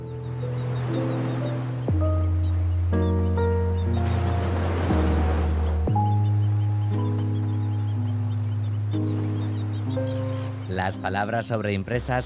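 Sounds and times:
calm sustained instrumental melody: 0.0 - 11.7
waves breaking on a deserted beach: 0.5 - 2.0, 3.8 - 6.1
speech: 10.9 - 12.2.

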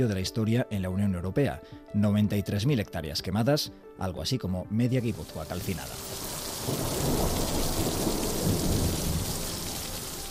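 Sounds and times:
speech: 0.0 - 7.5
heavy torrential rain pouring down in Zagora Greece: 5.1 - 10.3
low rumbles of thunder: 5.2 - 10.3.

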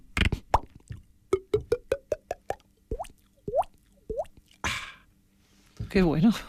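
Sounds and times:
voice imitating a water bottle glugging: 0.2 - 4.6
speech: 6.0 - 6.4.

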